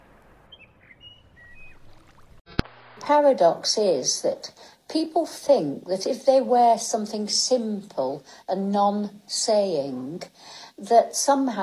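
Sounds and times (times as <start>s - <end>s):
lone bird singing thin high whistled notes in dawn chorus: 0.5s - 2.0s
speech: 3.0s - 11.6s.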